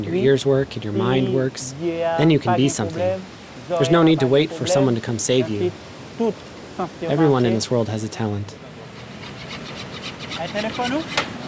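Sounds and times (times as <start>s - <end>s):
speech: 0.0s - 8.6s, 10.4s - 11.4s
voice murmuring: 0.0s - 9.0s
hand saw cutting wood: 8.9s - 11.4s.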